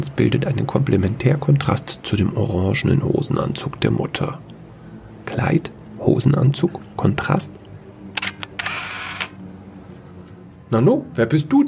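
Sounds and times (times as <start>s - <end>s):
speech: 0.1s - 4.5s, 5.3s - 7.7s, 10.7s - 11.6s
camera shutter clicks as a small robot camera takes a photo: 8.2s - 9.4s.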